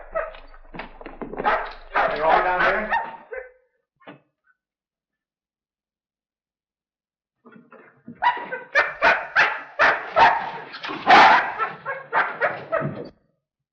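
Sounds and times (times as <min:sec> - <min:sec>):
injured dog barking and yelping: 0:00.0 - 0:00.7, 0:01.4 - 0:03.6, 0:07.8 - 0:13.1.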